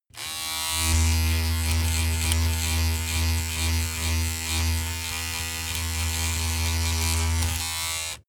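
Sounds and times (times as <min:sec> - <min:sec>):
boomy electric razor running under load: 0:00.1 - 0:08.2.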